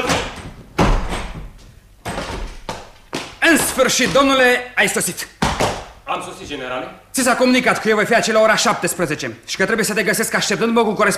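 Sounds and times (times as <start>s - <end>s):
door opening in a radio drama: 0.0s - 4.3s
speech: 3.8s - 5.4s, 6.2s - 11.1s.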